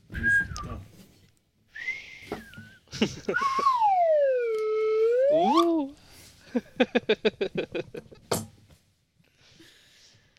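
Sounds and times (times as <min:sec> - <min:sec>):
person whistling: 0:00.1 - 0:00.8, 0:01.7 - 0:02.8, 0:03.4 - 0:06.0
laughter: 0:02.9 - 0:03.8, 0:06.5 - 0:08.2
speech: 0:03.0 - 0:03.7, 0:05.3 - 0:07.6.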